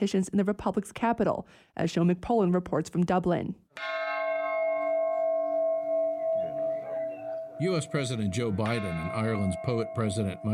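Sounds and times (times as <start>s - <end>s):
speech: 0.0s - 4.1s, 7.6s - 10.5s
large peace bell struck and ringing out: 3.8s - 10.5s.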